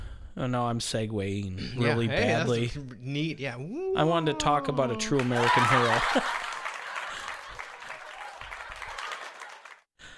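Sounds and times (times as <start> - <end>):
speech: 0.4 - 6.5
laughter: 1.7 - 9.8
crowd applauding: 4.0 - 9.9.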